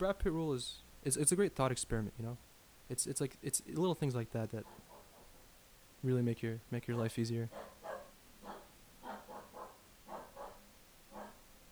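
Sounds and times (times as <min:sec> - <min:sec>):
speech: 0:00.0 - 0:04.9, 0:06.0 - 0:07.7
female dog barking and whiny yipping: 0:04.6 - 0:05.5, 0:07.0 - 0:11.7.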